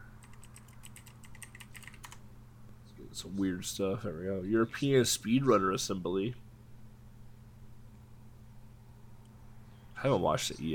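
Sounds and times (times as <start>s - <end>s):
steady low hum: 0.0s - 10.7s
rapid typing on a computer keyboard during a web search: 0.2s - 2.2s
speech: 3.1s - 6.4s, 10.0s - 10.7s.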